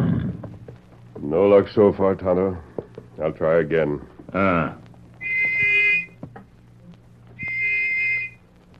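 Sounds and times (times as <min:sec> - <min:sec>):
faint hum: 0:00.0 - 0:08.7
speech: 0:01.3 - 0:04.8
small brass whistle blasts: 0:05.2 - 0:06.2, 0:07.4 - 0:08.4.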